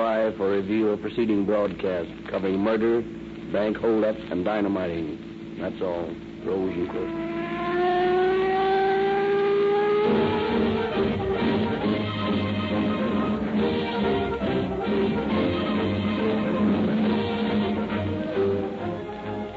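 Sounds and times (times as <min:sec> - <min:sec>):
speech: 0:00.3 - 0:07.3, 0:10.0 - 0:11.2
patrol car engine cruising: 0:06.9 - 0:19.5.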